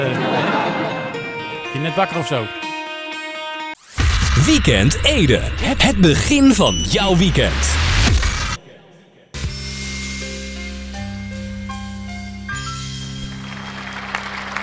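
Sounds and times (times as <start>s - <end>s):
laughter: 0.0s - 1.3s, 8.6s - 9.4s
speech: 1.8s - 2.7s, 4.5s - 7.9s
audience applause: 13.3s - 14.6s.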